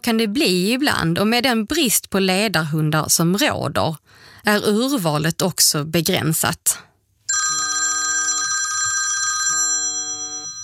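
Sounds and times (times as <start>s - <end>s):
speech: 0.0s - 6.9s
telephone ringing for an incoming call: 7.3s - 10.6s.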